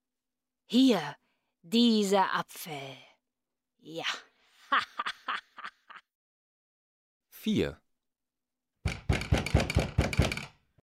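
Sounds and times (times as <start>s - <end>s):
speech: 0.7s - 3.1s, 3.8s - 5.4s, 7.4s - 7.8s
laughter: 4.6s - 6.1s
firm knocking on a door: 8.8s - 10.6s.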